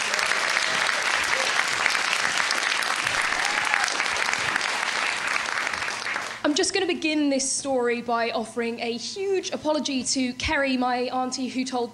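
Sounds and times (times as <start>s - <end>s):
crowd applauding: 0.0s - 6.4s
speech: 6.6s - 11.9s.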